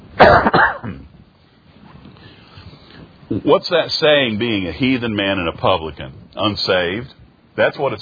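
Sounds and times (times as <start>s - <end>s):
cough into microphone: 0.2s - 1.2s
speech: 3.3s - 8.0s.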